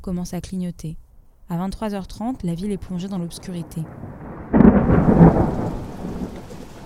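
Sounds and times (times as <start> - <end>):
speech: 0.0 - 4.2
storm wind: 0.0 - 6.8
steady heavy rain: 2.6 - 6.8
loud thunderclap at night: 3.3 - 6.8.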